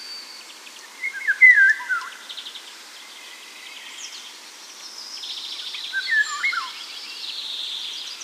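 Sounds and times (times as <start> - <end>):
Eurasian golden oriole whistling at Sjöbacken: 1.0 - 2.2, 6.0 - 6.8.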